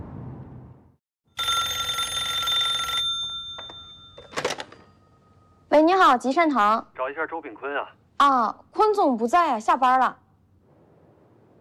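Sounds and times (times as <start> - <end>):
low rumble: 0.0 - 1.0
gatehouse telephone bell ringing on an outgoing call: 1.3 - 5.6
speech: 5.9 - 10.2.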